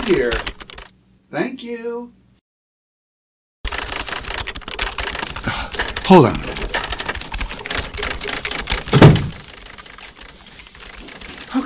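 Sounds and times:
typing on keyboards: 0:00.0 - 0:00.9, 0:03.6 - 0:11.6
speech: 0:00.1 - 0:00.5, 0:01.3 - 0:02.2, 0:05.4 - 0:06.5.

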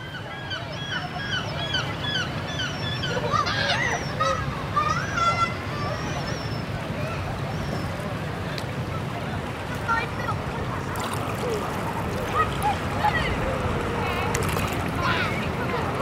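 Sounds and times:
seagulls crying and squawking at the beach: 0:00.0 - 0:07.9
faint crowd murmur: 0:00.0 - 0:16.0
low rumble of surf: 0:00.0 - 0:16.0
wind at the beach: 0:00.0 - 0:16.0.

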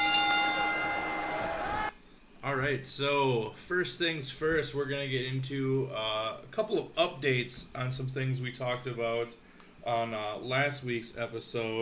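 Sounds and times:
bell ringing: 0:00.0 - 0:01.6
speech: 0:02.5 - 0:11.8.

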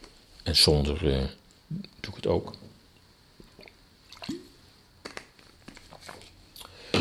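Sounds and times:
speech: 0:00.5 - 0:02.6
person sipping a drink: 0:03.5 - 0:03.8.

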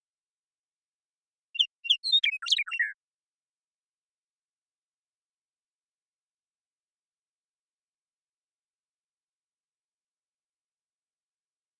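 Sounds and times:
Western Meadowlark Sturnella neglecta song of gurgling warbled notes: 0:01.6 - 0:03.0.

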